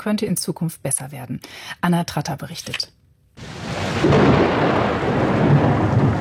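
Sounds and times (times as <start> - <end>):
speech: 0.0 - 3.0, 4.0 - 5.1
low rumbling thunder in the mountains: 3.4 - 6.1
steady pattering rain in a mountain thunderstorm: 3.4 - 6.1.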